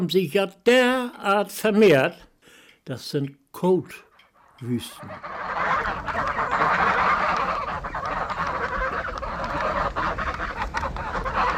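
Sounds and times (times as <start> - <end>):
speech: 0.0 - 2.3, 2.9 - 6.9
large flock of migrating geese honking at Eiderstedt: 4.2 - 11.5.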